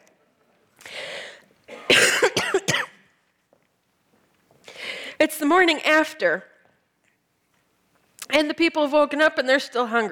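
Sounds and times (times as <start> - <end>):
person with a lingering cough coughing harshly: 1.7 - 3.0
speech: 5.3 - 6.5, 8.4 - 10.1.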